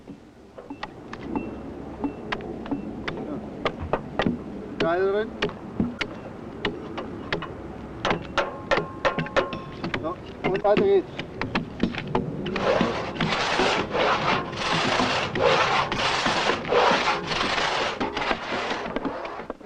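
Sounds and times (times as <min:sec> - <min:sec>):
wooden knocks and clicks: 0:02.0 - 0:13.4
hand sawing a wooden log into planks: 0:12.5 - 0:19.6.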